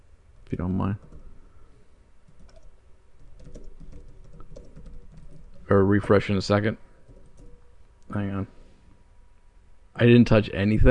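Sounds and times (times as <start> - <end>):
speech: 0.5 - 1.2, 5.7 - 6.8, 8.1 - 8.6, 10.0 - 10.8
typing on a computer keyboard: 1.0 - 1.4, 2.3 - 5.8, 7.0 - 7.7.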